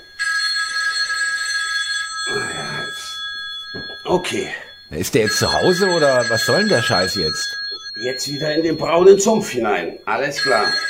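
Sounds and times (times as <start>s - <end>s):
telephone ringing with a metallic bell tone: 0.0s - 10.8s
speech: 4.1s - 10.8s.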